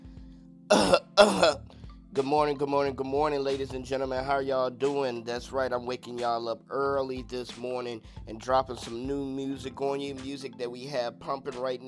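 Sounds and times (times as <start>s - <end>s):
person clearing throat: 0.7s - 1.6s
speech: 0.9s - 11.8s.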